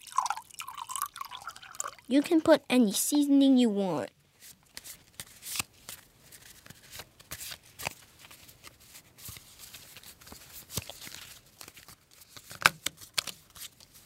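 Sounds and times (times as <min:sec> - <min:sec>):
water draining from boiled noodles: 0:00.0 - 0:02.4
speech: 0:02.1 - 0:04.2
playing cards being shuffled for a card game: 0:04.4 - 0:14.0.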